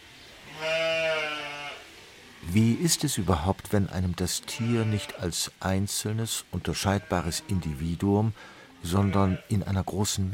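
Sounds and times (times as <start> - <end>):
sheep bleating: 0.4 - 1.9, 4.2 - 5.4, 6.7 - 9.7
speech: 2.5 - 10.3.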